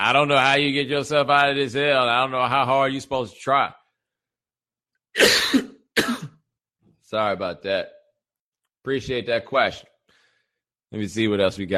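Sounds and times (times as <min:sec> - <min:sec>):
speech: 0:00.0 - 0:03.8, 0:05.2 - 0:05.7, 0:07.1 - 0:08.0, 0:08.8 - 0:09.9, 0:10.9 - 0:11.7
person coughing harshly: 0:05.2 - 0:06.4.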